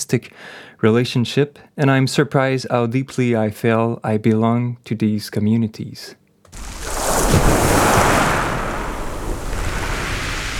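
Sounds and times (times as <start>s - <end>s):
speech: 0.1s - 8.1s
foaming water hissing: 6.5s - 10.5s
sea waves breaking on shore: 6.5s - 10.5s.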